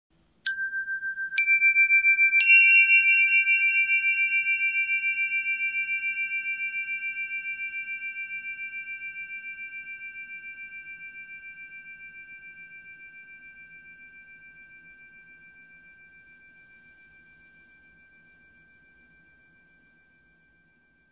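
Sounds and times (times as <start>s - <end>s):
bell ringing: 0.5s - 7.8s.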